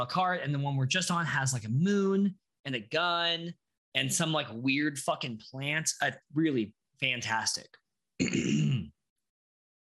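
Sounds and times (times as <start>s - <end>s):
speech: 0.0s - 8.7s
rough throat clearing with a coughing edge: 8.2s - 9.0s.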